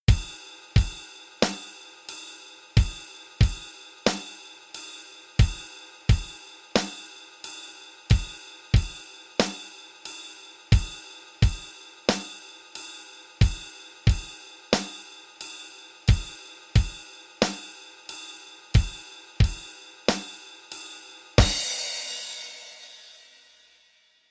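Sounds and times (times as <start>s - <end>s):
basic rock rhythm: 0.1s - 23.2s.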